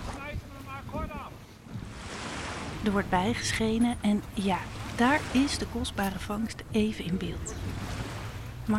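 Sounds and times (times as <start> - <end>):
rough waves and water sloshing in a small rubber boat: 0.0 - 8.7
speech: 2.8 - 7.9.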